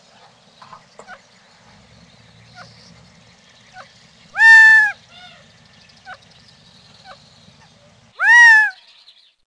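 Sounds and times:
faint short Gambel's Quail clucking notes: 0.2 - 1.3, 2.5 - 3.0, 3.7 - 6.3, 6.9 - 8.8
Gambel's Quail loud nasal drawn-out calls: 3.7 - 5.4, 8.2 - 8.8.

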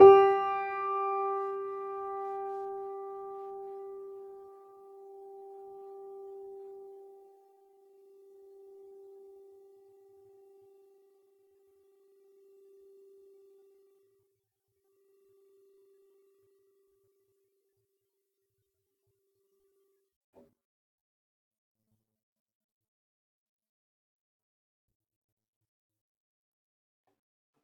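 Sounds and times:
soft upright Wurlitzer electric piano note G3: 0.0 - 7.2.

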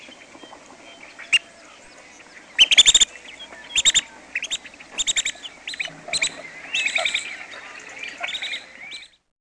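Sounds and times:
Long-billed Dowitcher sharp high chattering: 3.7 - 8.6.

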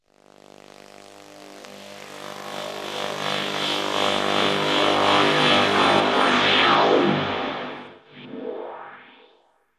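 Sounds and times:
ambience: 3.0 - 9.4.

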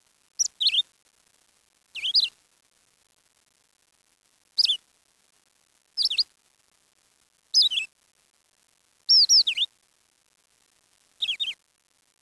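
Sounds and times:
bird chirps: 0.4 - 0.8, 2.0 - 2.3, 4.6 - 4.8, 6.0 - 6.2, 7.6 - 7.9, 9.1 - 9.7, 11.2 - 11.6.

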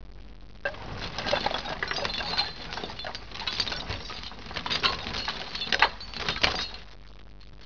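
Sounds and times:
tool chest: 0.7 - 6.9.

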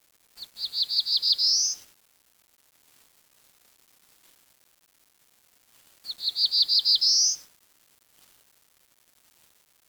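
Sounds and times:
bird giving short high chirps that dip at the end: 0.5 - 1.8, 6.1 - 7.4.

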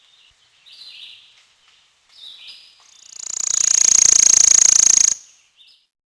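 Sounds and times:
worm-eating warbler song with soft high notes and dry buzzy trill: 3.1 - 5.3.

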